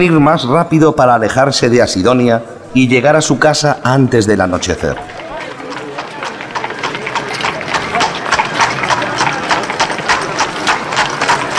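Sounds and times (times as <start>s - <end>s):
speech: 0.0s - 5.2s
indistinct murmur of voices: 4.3s - 11.5s
many horse hooves clip-clopping at a brisk pace: 4.9s - 11.5s.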